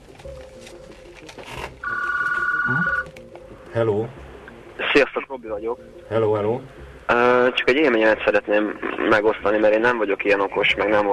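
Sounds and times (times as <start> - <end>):
telephone electronic two-tone ring for incoming call: 1.8 - 3.1
speech: 3.8 - 4.2, 5.0 - 11.1.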